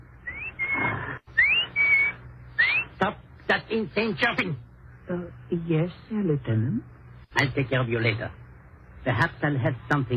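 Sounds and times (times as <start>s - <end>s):
person whistling in imitation of a clock's mechanical bird: 0.2s - 2.8s
speech: 3.0s - 8.4s, 9.0s - 10.1s.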